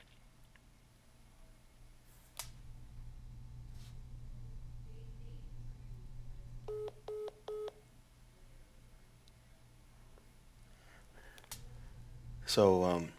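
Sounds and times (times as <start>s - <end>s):
steady low hum: 2.4s - 13.1s
telephone keypad dialing tones: 6.7s - 7.8s
speech: 12.5s - 13.1s.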